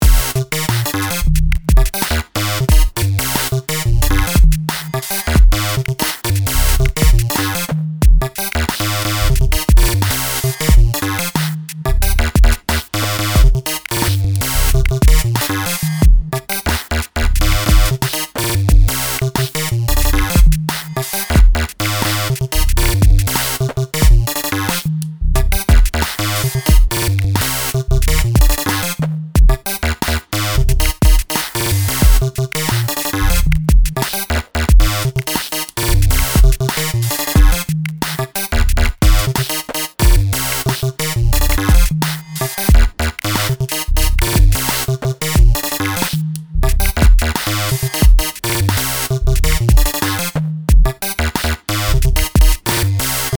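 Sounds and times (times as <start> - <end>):
repeating sequenced drums: 0.0 - 53.3.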